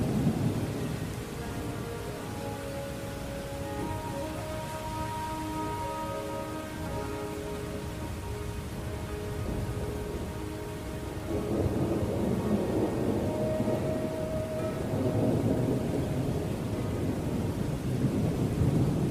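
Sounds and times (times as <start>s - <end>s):
soft sustained flute notes: 0.0s - 19.0s.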